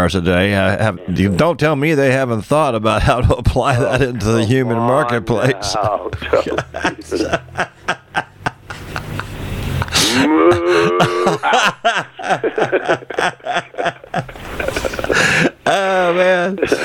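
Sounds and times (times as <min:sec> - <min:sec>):
speech: 0:00.0 - 0:07.8, 0:10.2 - 0:14.8, 0:15.4 - 0:16.8
people chuckling: 0:03.7 - 0:16.8
cow mooing: 0:10.2 - 0:11.4.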